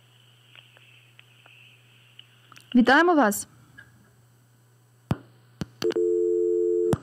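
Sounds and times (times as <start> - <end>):
faint low hum on a telephone line: 0.0 - 7.0
speech: 2.7 - 3.6
telephone line clicks after a dropped call: 5.8 - 6.1
telephone busy tone after a dropped call: 5.8 - 7.0.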